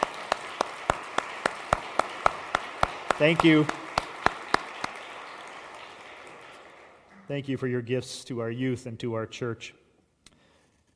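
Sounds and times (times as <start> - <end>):
applause in a room: 0.0 - 7.9
speech: 3.2 - 3.8, 7.3 - 9.8.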